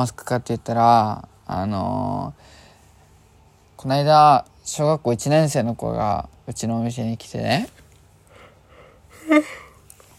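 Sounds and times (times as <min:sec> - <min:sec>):
speech: 0:00.0 - 0:02.6, 0:03.8 - 0:07.8, 0:09.3 - 0:09.6
single short voiced yawn: 0:09.2 - 0:09.8.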